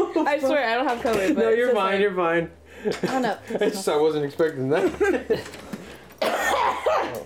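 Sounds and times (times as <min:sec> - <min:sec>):
speech: 0:00.2 - 0:05.7
laughter: 0:04.6 - 0:06.0
person coughing: 0:06.2 - 0:07.2.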